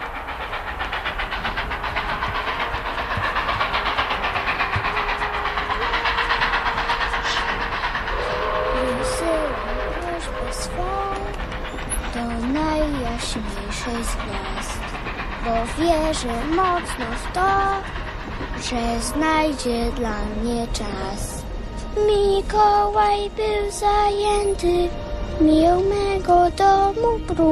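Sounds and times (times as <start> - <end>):
short rising gliding whistling tones: 0.0 - 21.9
steady hissing train rumble: 0.0 - 27.5
speech: 15.5 - 18.0, 18.6 - 21.4, 22.0 - 27.5.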